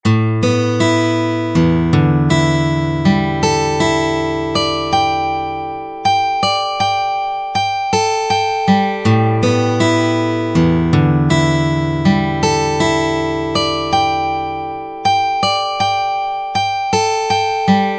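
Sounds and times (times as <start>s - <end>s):
six string steel guitar: 0.0s - 17.9s.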